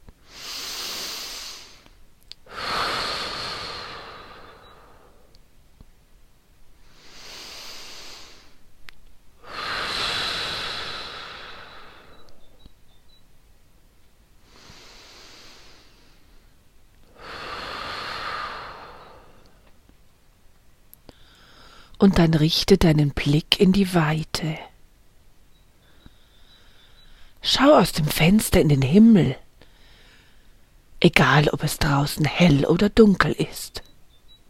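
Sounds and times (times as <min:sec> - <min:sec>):
slow quiet deep breathing in and out: 0:00.2 - 0:05.4, 0:06.7 - 0:08.6, 0:09.4 - 0:12.7, 0:14.4 - 0:19.8, 0:21.1 - 0:22.0, 0:25.8 - 0:27.4, 0:29.6 - 0:30.8
speech: 0:22.0 - 0:24.7, 0:27.6 - 0:29.4, 0:31.0 - 0:33.8.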